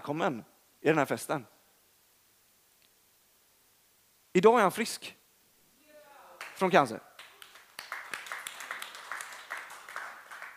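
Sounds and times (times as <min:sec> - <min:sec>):
speech: 0:00.1 - 0:01.6, 0:04.4 - 0:05.2, 0:06.6 - 0:07.1
audience applause: 0:06.4 - 0:10.5.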